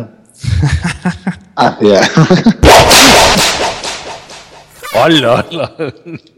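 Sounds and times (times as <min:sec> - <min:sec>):
speech: 0:00.0 - 0:03.5, 0:05.0 - 0:06.3
laughter: 0:00.4 - 0:03.2, 0:05.1 - 0:06.3
whip crack with echo: 0:02.8 - 0:04.7.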